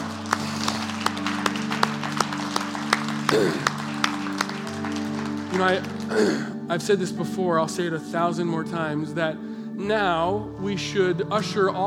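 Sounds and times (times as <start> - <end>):
audience clapping rhythmically in unison: 0.0 - 6.6
speech: 3.3 - 3.7, 5.6 - 11.8.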